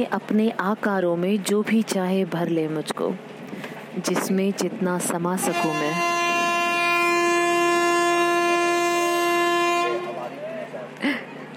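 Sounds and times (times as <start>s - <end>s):
speech: 0.0s - 3.4s, 4.0s - 6.1s
passing train rumble: 0.0s - 11.5s
passing train horn blast: 5.4s - 10.6s.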